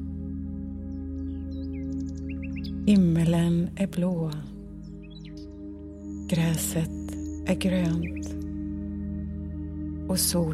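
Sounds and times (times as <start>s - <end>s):
steady low humming drone: 0.0s - 10.5s
several small birds chirping and tweeting: 0.7s - 8.6s
speech: 2.9s - 4.5s, 6.3s - 8.4s, 10.1s - 10.5s.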